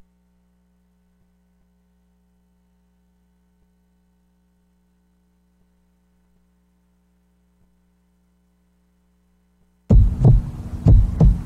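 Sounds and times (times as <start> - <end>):
low hum: 0.0 - 11.4
deep heartbeat thumping: 9.9 - 11.4.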